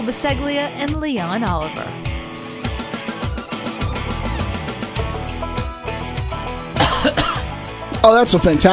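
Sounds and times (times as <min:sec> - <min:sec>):
speech: 0:00.0 - 0:02.2, 0:08.0 - 0:08.7
upbeat music: 0:00.0 - 0:08.7
sudden rough cough from a person whose cough has come back: 0:06.8 - 0:07.5.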